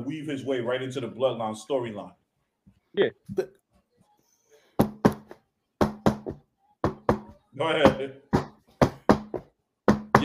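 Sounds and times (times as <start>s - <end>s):
speech: 0.1s - 2.2s, 2.9s - 3.6s, 7.6s - 8.3s
firm knocking on a door: 4.8s - 10.2s.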